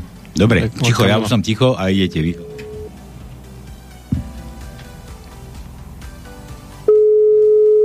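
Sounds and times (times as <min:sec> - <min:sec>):
noise: 0:00.0 - 0:05.8
speech: 0:00.4 - 0:02.5
telephone ringing tone during outgoing call: 0:01.9 - 0:02.9, 0:06.9 - 0:07.8.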